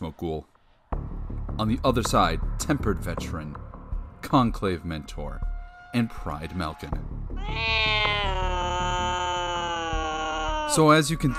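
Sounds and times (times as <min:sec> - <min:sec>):
speech: 0:00.1 - 0:00.5, 0:01.6 - 0:08.6, 0:10.7 - 0:11.3
angry cat yowling: 0:07.4 - 0:11.3.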